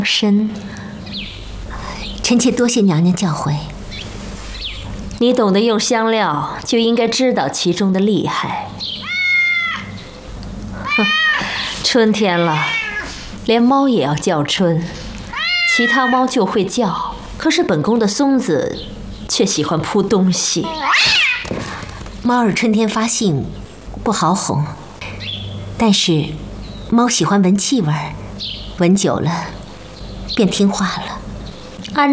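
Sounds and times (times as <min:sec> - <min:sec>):
speech: 0:00.0 - 0:01.0, 0:02.3 - 0:03.8, 0:05.2 - 0:09.0, 0:11.0 - 0:11.2, 0:11.8 - 0:12.8, 0:13.5 - 0:15.0, 0:15.7 - 0:24.8, 0:25.8 - 0:29.6, 0:30.3 - 0:31.2, 0:32.0 - 0:32.1
cat yowling in heat: 0:09.0 - 0:10.0, 0:10.8 - 0:13.2, 0:15.3 - 0:16.4, 0:20.6 - 0:21.5.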